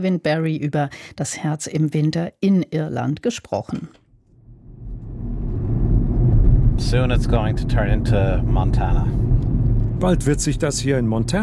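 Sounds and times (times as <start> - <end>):
speech: 0.0 - 4.0, 6.8 - 9.2, 10.0 - 11.4
car driving through the countryside of County Sligo, Ireland: 4.3 - 11.4.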